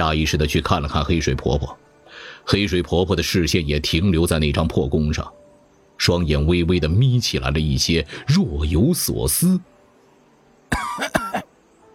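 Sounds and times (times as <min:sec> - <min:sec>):
speech: 0:00.0 - 0:01.8, 0:02.4 - 0:05.4, 0:06.0 - 0:09.7
person coughing hoarsely: 0:10.7 - 0:11.5.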